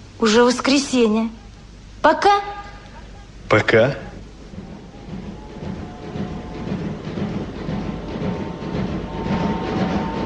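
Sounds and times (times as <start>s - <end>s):
speech: 0.2s - 1.4s, 2.0s - 2.6s, 3.5s - 4.1s
passenger train passing: 3.0s - 10.2s.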